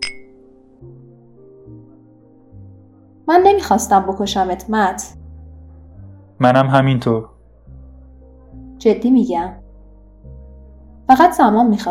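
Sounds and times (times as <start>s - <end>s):
wine glasses clinking in a toast at a bar: 0.0s - 0.3s
low steady music: 0.0s - 11.9s
speech: 3.3s - 5.2s, 6.4s - 7.3s, 8.8s - 9.6s, 11.1s - 11.9s.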